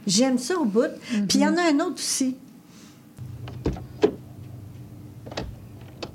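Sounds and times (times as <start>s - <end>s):
speech: 0.0s - 2.4s
low idling hum: 3.2s - 6.1s
car door opening and closing: 3.4s - 4.3s, 5.2s - 6.1s.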